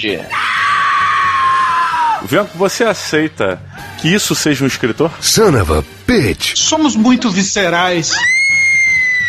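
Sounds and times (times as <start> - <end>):
speech: 0.0 - 0.4, 2.2 - 8.6
loud anguished scream of despair: 0.3 - 2.2, 8.1 - 9.2.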